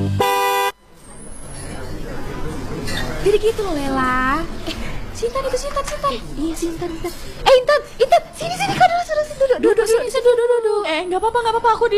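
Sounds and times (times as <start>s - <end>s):
car horn toot on a road: 0.0s - 0.8s
speech: 3.2s - 8.8s, 9.6s - 11.9s.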